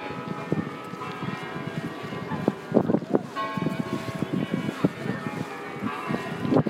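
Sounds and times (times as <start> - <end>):
large Kremlin church bells ringing outdoors: 0.0 - 6.6
wind: 0.0 - 6.6.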